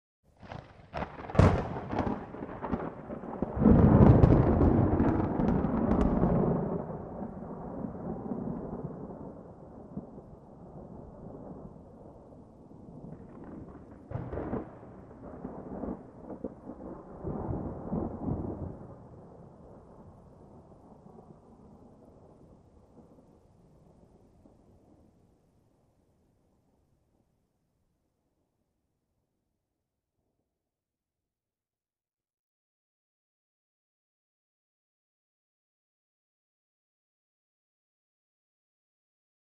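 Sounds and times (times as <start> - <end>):
lightning close: 0.4 - 25.1.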